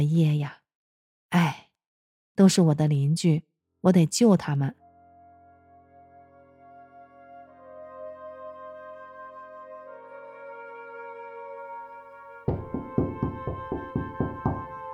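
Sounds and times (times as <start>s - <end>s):
speech: 0.0s - 0.6s, 1.3s - 1.6s, 2.4s - 4.8s
soft sustained music: 4.7s - 14.9s
loud sharp knocks on a door of a home: 12.5s - 14.8s.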